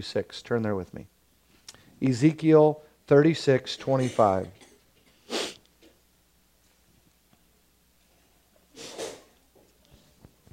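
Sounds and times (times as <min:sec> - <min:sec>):
speech: 0:00.0 - 0:01.2, 0:02.0 - 0:04.6
person sneezing: 0:03.9 - 0:05.6, 0:08.7 - 0:09.4.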